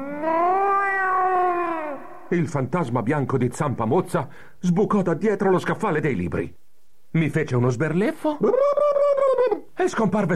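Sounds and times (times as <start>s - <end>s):
cat meowing: 0.0s - 2.3s
speech: 2.3s - 9.0s, 9.8s - 10.3s.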